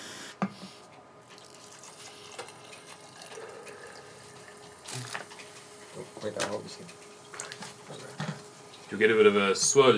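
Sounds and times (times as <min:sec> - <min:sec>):
faint steady hum: 0:00.0 - 0:09.9
vinegar being poured into a container: 0:01.3 - 0:05.1
speech: 0:06.2 - 0:07.0, 0:08.9 - 0:09.9.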